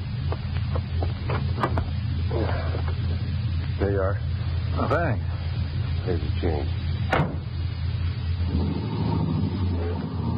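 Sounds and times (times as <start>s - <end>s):
low car engine idling: 0.0s - 10.3s
thumps and shuffles of a man climbing into a car: 0.2s - 3.2s
speech: 3.9s - 5.3s, 6.1s - 7.3s.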